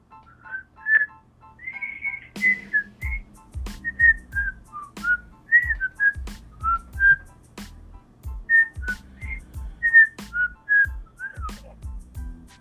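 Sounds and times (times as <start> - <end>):
person whistling a lively bouncy melody: 0.4 - 7.3, 8.5 - 11.6.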